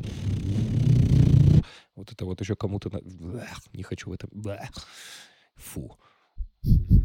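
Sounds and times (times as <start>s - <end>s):
voice humming a low engine drone imitating a car driving: 0.0s - 1.6s
speech: 2.1s - 6.0s.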